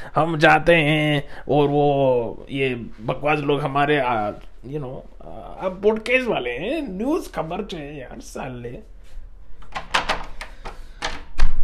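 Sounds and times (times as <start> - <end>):
speech: 0.0 - 8.9
door being pushed shut and locked: 9.6 - 11.6.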